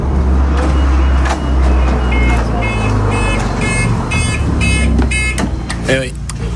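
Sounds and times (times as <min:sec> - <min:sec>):
bus engine rumble: 0:00.0 - 0:06.5
road noise: 0:00.0 - 0:06.5
bus safety beeps for door opening, door closing and pedestrian presence: 0:00.6 - 0:05.4.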